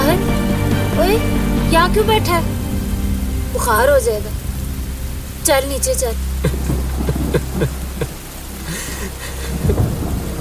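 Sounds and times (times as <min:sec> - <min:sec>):
deep rumble of thunder: 0:00.0 - 0:10.4
steady rain pouring down: 0:00.0 - 0:10.4
speech: 0:01.2 - 0:02.6, 0:03.6 - 0:04.4, 0:05.4 - 0:06.7, 0:07.3 - 0:07.8
laughter: 0:06.5 - 0:09.9.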